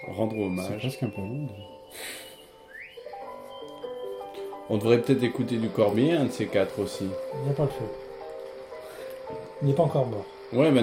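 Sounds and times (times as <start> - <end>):
speech: 0.0 - 2.3, 4.7 - 8.0, 9.6 - 10.8
woman whistling a melodic phrase: 0.0 - 4.6
soft instrumental backing: 0.0 - 10.8.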